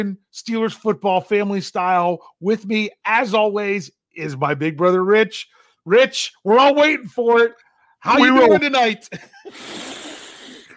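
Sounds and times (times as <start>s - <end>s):
speech: 0.0s - 9.8s
laughter: 8.1s - 9.6s
long deep sniffing inhale: 9.5s - 10.7s.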